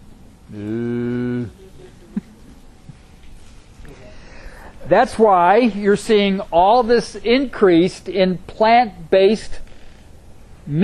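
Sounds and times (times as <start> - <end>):
speech: 0.5 - 0.8, 4.9 - 9.6
cow mooing: 0.5 - 1.6.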